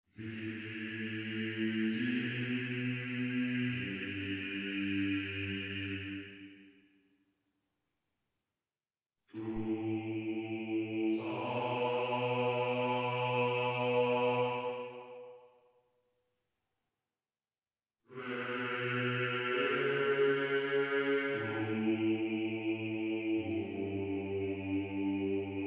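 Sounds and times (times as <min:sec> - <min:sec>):
church male choir singing in game audio: 0:00.2 - 0:06.5, 0:09.4 - 0:15.3, 0:18.1 - 0:25.6.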